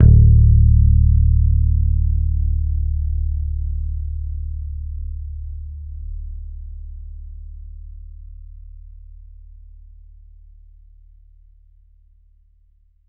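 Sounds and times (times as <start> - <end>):
Thunderbird bass guitar picked D1 note: 0.0 - 7.4.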